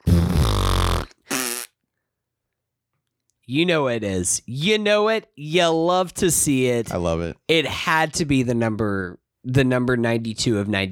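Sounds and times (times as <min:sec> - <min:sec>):
loud buzzy fart sound effect: 0:00.0 - 0:01.7
speech: 0:03.5 - 0:10.9.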